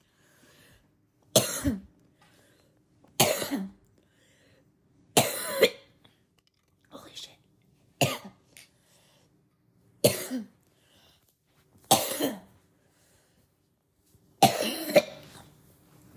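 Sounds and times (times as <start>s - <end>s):
person in a hard coughing fit: 1.3s - 1.9s, 3.2s - 3.8s, 5.2s - 6.0s, 8.0s - 8.4s, 10.0s - 10.6s, 11.9s - 12.6s, 14.4s - 15.4s
speech: 1.6s - 1.8s.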